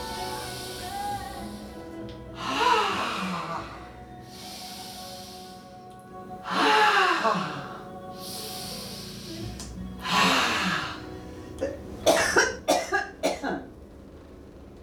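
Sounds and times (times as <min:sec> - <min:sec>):
deep breaths in a guided meditation exercise: 0:00.0 - 0:11.8
soft steady tones: 0:00.0 - 0:14.8.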